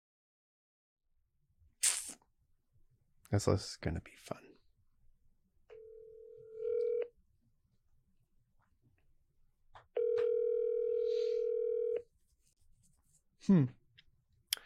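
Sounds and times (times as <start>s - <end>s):
speech: 3.3s - 4.5s, 13.5s - 13.8s
telephone dial tone: 5.7s - 7.1s, 10.0s - 12.0s.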